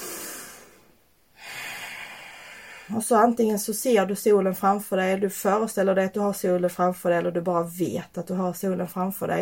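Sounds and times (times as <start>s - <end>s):
deep breaths: 0.0s - 2.9s
speech: 2.9s - 9.4s.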